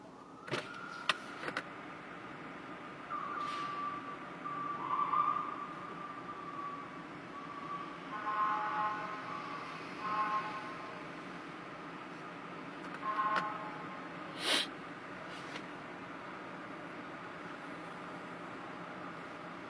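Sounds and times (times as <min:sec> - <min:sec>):
fire truck siren wailing in heavy traffic: 0:00.0 - 0:01.4, 0:02.8 - 0:11.2
steady road rumble heard from a car in heavy traffic: 0:00.0 - 0:19.6
short sharp fire truck siren bursts: 0:03.1 - 0:10.9.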